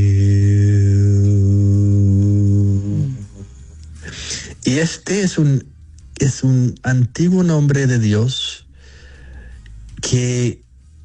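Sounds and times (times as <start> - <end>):
person chanting a spiritual word: 0.0 - 3.6
speech: 4.7 - 8.4, 10.1 - 10.6.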